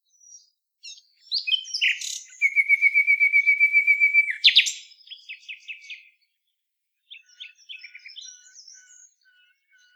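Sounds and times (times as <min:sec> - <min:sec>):
common nightingale Luscinia megarhynchos song: 0:00.0 - 0:09.9.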